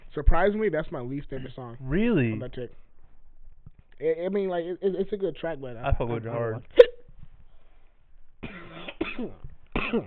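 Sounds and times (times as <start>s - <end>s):
speech: 0.2s - 2.9s, 4.0s - 6.8s, 9.2s - 10.0s
person coughing into a microphone: 8.4s - 10.0s.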